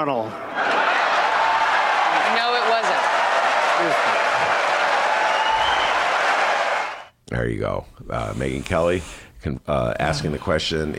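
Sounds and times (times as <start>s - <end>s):
speech: 0.0s - 0.8s, 3.8s - 4.6s, 7.3s - 10.9s
large debate audience cheering and applauding: 0.4s - 7.1s
scattered shouts from a debate audience: 0.5s - 7.1s.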